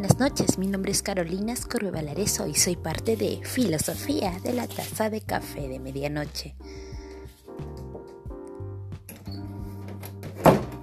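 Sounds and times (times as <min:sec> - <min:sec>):
speech: 0:00.0 - 0:06.9
door closing with a solid thump: 0:10.2 - 0:10.8.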